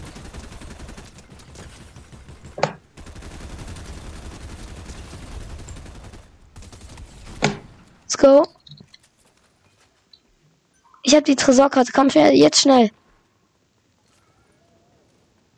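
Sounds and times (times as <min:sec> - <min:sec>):
video game gunshots during a ranked duos match: 0:00.0 - 0:08.4
video game noise: 0:00.0 - 0:15.5
speech: 0:08.2 - 0:08.6, 0:11.1 - 0:13.0.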